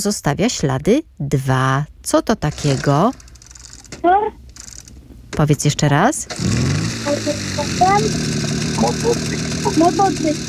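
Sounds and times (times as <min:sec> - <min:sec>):
speech: 0:00.0 - 0:03.2, 0:05.4 - 0:10.4
motorcycle engine rumbling: 0:06.3 - 0:10.4.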